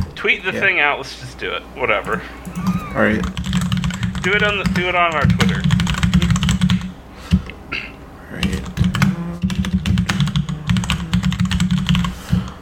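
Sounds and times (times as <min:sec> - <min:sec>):
low steady hum: 0:00.0 - 0:12.6
speech: 0:00.2 - 0:03.4, 0:04.2 - 0:05.7
computer keyboard typing: 0:02.0 - 0:06.9, 0:08.4 - 0:12.6.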